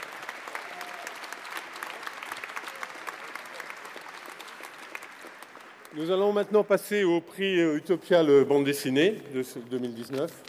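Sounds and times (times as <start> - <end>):
sustained applause from a sizable audience: 0.0 - 6.0
speech: 6.0 - 10.4.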